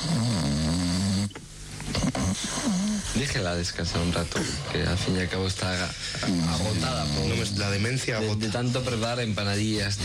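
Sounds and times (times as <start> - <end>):
woman snoring: 0.0 - 3.2, 6.2 - 7.8
speech: 3.2 - 10.0.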